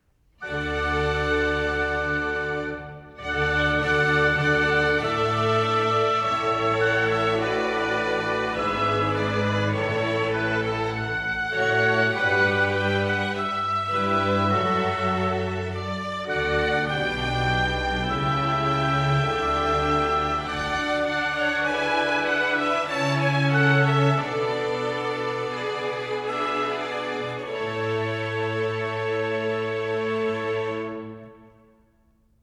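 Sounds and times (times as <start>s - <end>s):
continuo: 0.4s - 31.7s
strings: 0.4s - 31.9s
trumpet in D major: 0.4s - 31.9s.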